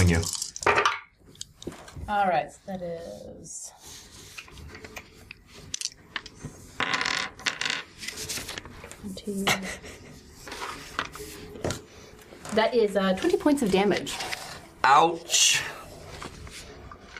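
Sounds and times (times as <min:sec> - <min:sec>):
speech: 0:00.1 - 0:00.4, 0:02.1 - 0:04.1, 0:09.0 - 0:10.0, 0:12.5 - 0:15.8
handful of dice clattering across a hard surface: 0:05.7 - 0:07.9.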